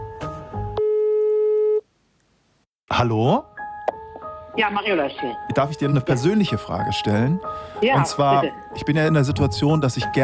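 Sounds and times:
telephone call signal tone on a phone line: 0.8 - 1.8
speech: 3.0 - 3.5, 4.6 - 10.2.

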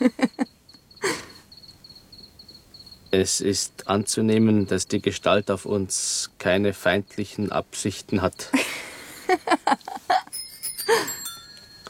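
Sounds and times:
speech: 3.1 - 8.7
bicycle bells ringing at different pitches: 8.3 - 9.6, 10.2 - 11.8.

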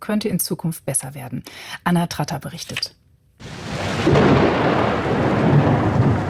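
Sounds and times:
speech: 0.1 - 3.0, 4.0 - 5.2
heavy rain pouring during a mountain storm: 3.4 - 6.2
low rumble of thunder during a mountain storm: 3.4 - 6.2.

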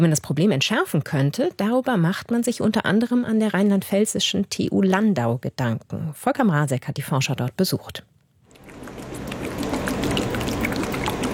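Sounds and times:
speech: 0.0 - 8.1
lab shaker machine swirling liquid in plastic tubes at a university lab in Landau, Germany: 8.5 - 11.3.

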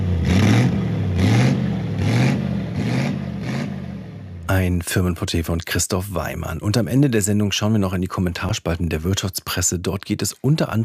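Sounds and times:
vintage eight-cylinder race car engine revving: 0.0 - 4.6
speech: 4.5 - 10.8.

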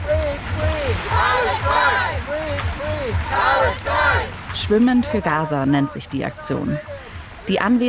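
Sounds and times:
group chanting slogan while standing in sea: 0.0 - 4.4
sea water sloshing and splashing: 0.0 - 7.8
speech: 3.1 - 7.8.

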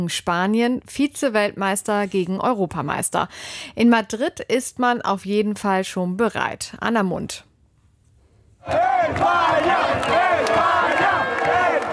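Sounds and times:
speech: 0.0 - 7.5, 8.6 - 11.6
football fans in Madrid cheering and chanting after a World Cup win: 8.6 - 11.9.

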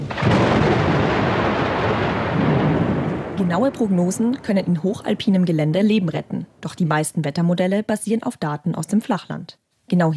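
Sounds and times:
deep continuous roll of thunder: 0.0 - 7.2
speech: 3.5 - 10.1.

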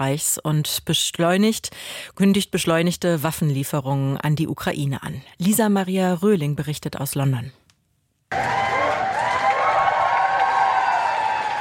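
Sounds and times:
speech: 0.0 - 7.6
crowd clapping in open air: 8.3 - 11.6.

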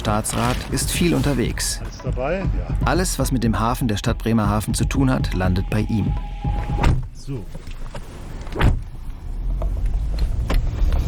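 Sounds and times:
speech: 0.0 - 8.7
car engine starting and setting off in a harbour car park: 0.0 - 11.0
brief thump: 6.5 - 7.1.

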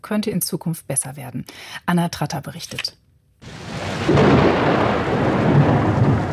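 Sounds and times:
speech: 0.0 - 3.0
deep rumbling swell of thunder or wind: 3.4 - 6.3
heavy rain pouring in a mountain storm: 3.4 - 6.3.

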